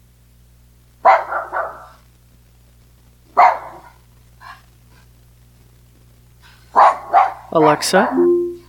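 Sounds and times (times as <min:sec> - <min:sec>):
low steady hum: 0:00.0 - 0:08.6
dog bark sound played by a smart speaker: 0:01.0 - 0:02.0, 0:03.3 - 0:04.7, 0:06.7 - 0:08.2
speech: 0:07.6 - 0:08.3.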